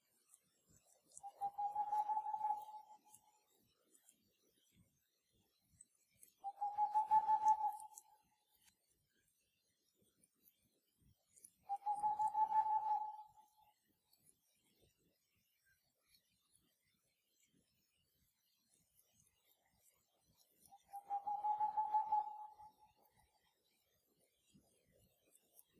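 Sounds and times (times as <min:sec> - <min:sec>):
Tengmalm's owl calling: 0:01.4 - 0:02.9, 0:06.5 - 0:08.0, 0:11.8 - 0:13.3, 0:21.0 - 0:22.7.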